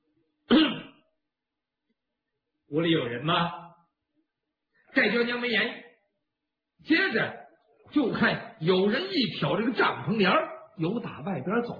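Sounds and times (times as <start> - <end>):
single light cough outside a tent door: 0.5 - 1.0
speech: 2.7 - 3.6, 5.0 - 5.8, 6.8 - 11.7.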